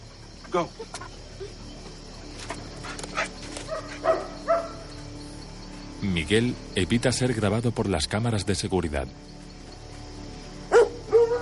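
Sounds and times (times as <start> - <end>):
speech: 0.5 - 1.6, 6.0 - 9.4
dogs following a scent trail, barking and whimpering: 2.6 - 4.9, 10.7 - 11.4.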